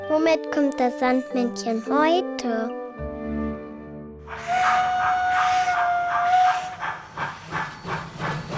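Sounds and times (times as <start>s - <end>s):
speech: 0.3s - 2.8s
steam locomotive whistle: 4.3s - 8.5s.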